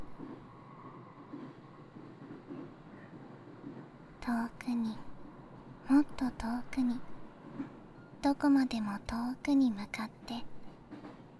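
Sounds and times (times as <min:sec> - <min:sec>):
train rumbling on rails heard from inside a carriage: 0:00.0 - 0:11.3
speech: 0:04.2 - 0:05.1, 0:05.9 - 0:10.6.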